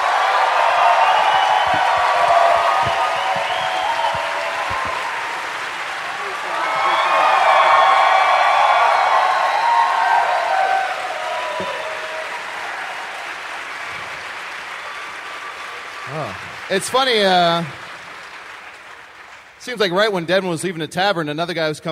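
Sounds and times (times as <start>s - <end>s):
scattered cheers and whoops: 0.0s - 16.5s
tavern crowd applauding: 0.0s - 20.6s
speech: 16.8s - 17.8s, 19.7s - 21.9s.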